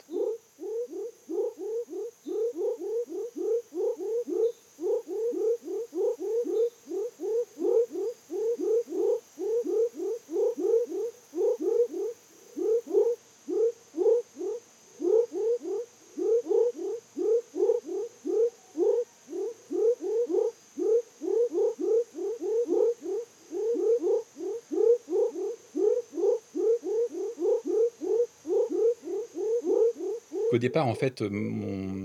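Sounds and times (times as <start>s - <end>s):
Savage's frog calling near a stream by a village: 0.0s - 32.0s
constant high insect hum: 0.0s - 32.0s
speech: 30.6s - 32.0s.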